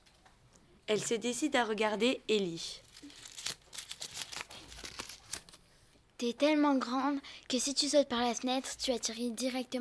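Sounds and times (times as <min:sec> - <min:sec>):
speech: 0:00.9 - 0:03.2, 0:06.2 - 0:09.8
paper note crinkling as it is unfolded: 0:02.7 - 0:05.6.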